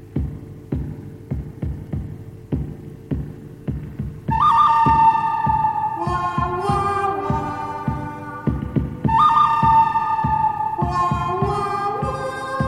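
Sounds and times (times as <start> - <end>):
galloping rhythm of low thumping beats in Western movie theme music: 0.0 - 12.6
bright piercing lead melody in Western movie theme music: 4.3 - 12.6.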